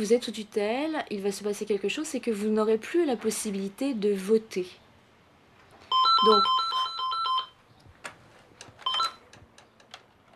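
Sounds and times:
speech: 0.0 - 4.8, 6.2 - 6.7
telephone ringing with bright electronic warbling tones: 5.9 - 7.6, 8.8 - 9.2.

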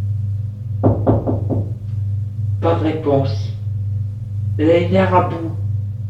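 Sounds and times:
constant low hum: 0.0 - 6.0
woman knocking on a wooden bedroom door in the servants' quarters: 0.8 - 1.8
speech: 2.6 - 3.6, 4.6 - 5.6.

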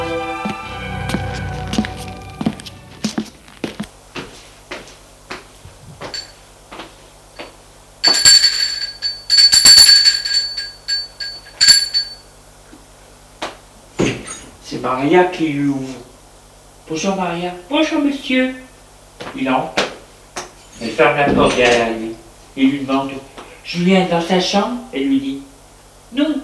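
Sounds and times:
rustling noise: 0.4 - 7.2
doorbell chime at an apartment door: 6.1 - 6.4, 8.0 - 12.2
speech: 14.9 - 16.1, 16.9 - 18.6, 19.4 - 19.8, 21.0 - 22.0, 22.6 - 25.5.

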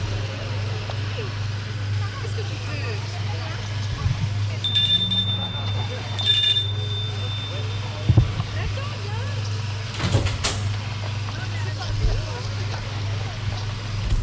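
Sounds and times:
faint voices murmuring: 0.0 - 14.1
door opening and closing: 9.9 - 10.7.

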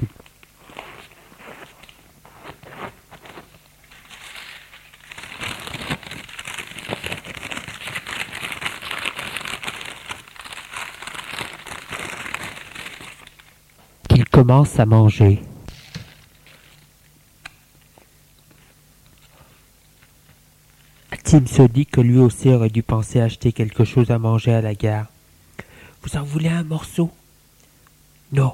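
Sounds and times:
paper crinkling as a ham sandwich is unwrapped: 0.4 - 13.6
speech: 14.4 - 15.5, 21.3 - 25.1, 26.0 - 27.2, 28.3 - 28.5.

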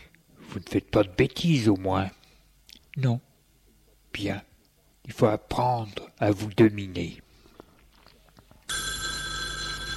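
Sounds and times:
speech: 0.6 - 2.2, 3.0 - 3.3, 4.2 - 7.2
telephone bell ringing: 8.7 - 9.9.

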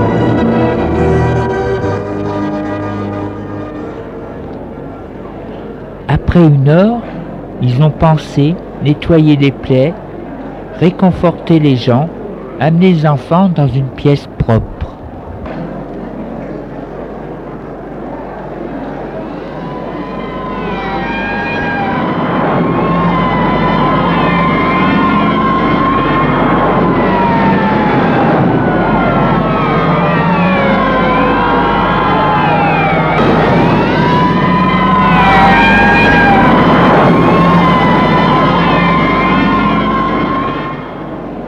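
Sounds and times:
fire engine and police sirens wailing at an attack scene in Paris: 0.0 - 5.4, 18.4 - 41.4
fire engine and police vehicle engines rumbling: 0.0 - 41.4
speech: 6.4 - 10.0, 10.8 - 14.7.

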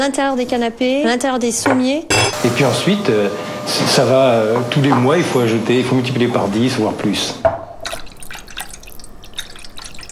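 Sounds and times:
speech: 0.0 - 7.5
tap water dripping from a tap in Lyon: 7.8 - 10.1.

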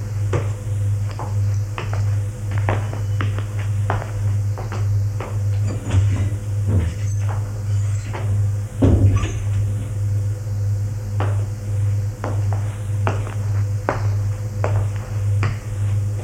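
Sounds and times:
steady low electrical hum: 0.0 - 16.2
footsteps of a man walking into the kitchen on a hard floor: 0.3 - 10.0, 11.2 - 16.2.

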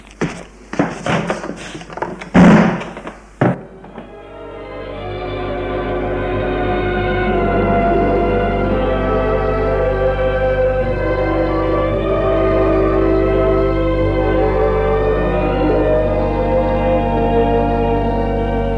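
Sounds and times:
knocks and bumps: 0.1 - 4.1
door slamming shut: 2.0 - 4.1
sustained music: 3.9 - 18.7.

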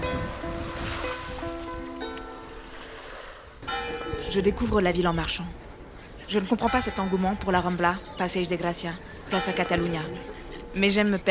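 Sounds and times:
ocean waves breaking on the shore at Barceloneta on a moonlit evening: 0.0 - 11.3
speech: 4.3 - 5.6, 6.3 - 11.3.

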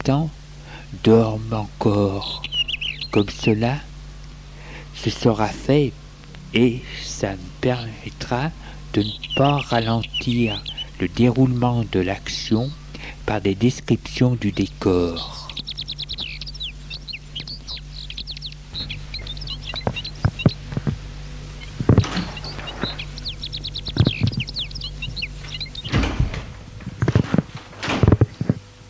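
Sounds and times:
low constant hum: 0.0 - 28.8
steady chirping birdsong: 0.0 - 28.8
speech: 0.1 - 3.9, 5.0 - 15.4
creak of a house front door: 21.7 - 28.6
knocks and clunks of a house front door being handled: 21.8 - 23.1, 23.9 - 28.5.

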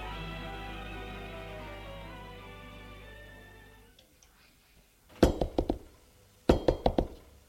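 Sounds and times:
sustained low musical drone: 0.0 - 4.0
firm knocking on a door: 5.2 - 5.9, 6.5 - 7.2.

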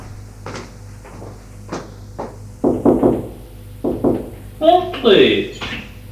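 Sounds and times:
knocking on a wooden bedroom door: 2.6 - 4.4
speech: 5.0 - 5.5.

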